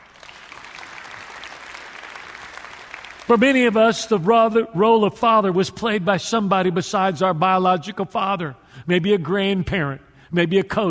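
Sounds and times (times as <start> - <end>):
audience applauding: 0.0 - 3.8
speech: 3.3 - 10.8.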